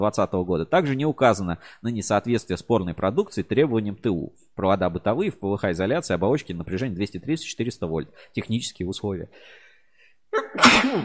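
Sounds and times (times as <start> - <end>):
speech: 0.0 - 9.6, 10.3 - 11.0
person sneezing: 10.4 - 11.0.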